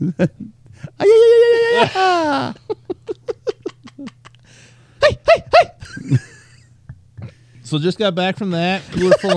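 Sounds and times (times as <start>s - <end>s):
speech: 0.0s - 2.7s, 7.7s - 9.3s
man shouting sharply: 1.0s - 2.5s
man yelling a war cry: 1.0s - 2.5s
laughter: 1.6s - 4.4s, 5.0s - 7.4s, 8.7s - 9.3s.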